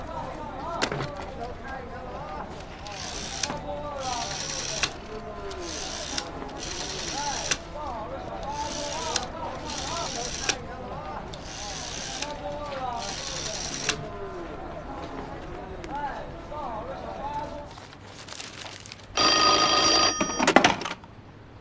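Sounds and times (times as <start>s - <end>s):
people talking: 0.0s - 17.8s
telephone ringing: 19.2s - 20.6s.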